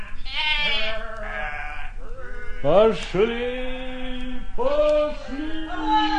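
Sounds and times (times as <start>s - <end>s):
flock of sheep bleating while led along a village street: 0.2s - 2.9s
speech: 2.6s - 3.8s, 4.6s - 6.0s.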